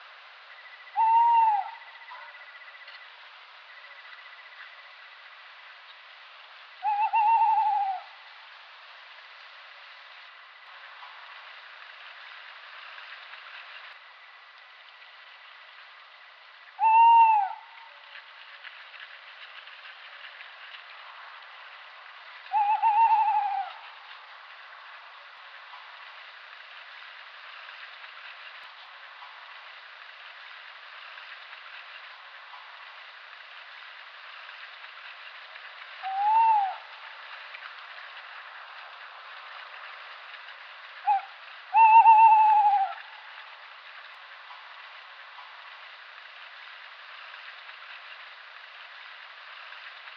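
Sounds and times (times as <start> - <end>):
tawny owl Strix aluco calling in autumn: 0.5 - 3.1, 6.8 - 8.2, 16.7 - 18.0, 22.5 - 23.9, 36.0 - 36.9, 41.0 - 43.1.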